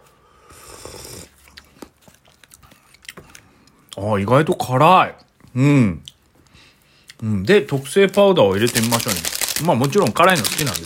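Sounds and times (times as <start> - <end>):
wet slurp of ramen noodles: 0.4 - 1.8
soft irregular chewing smacks and clicks: 1.4 - 4.0
speech: 4.0 - 6.0, 7.2 - 10.8.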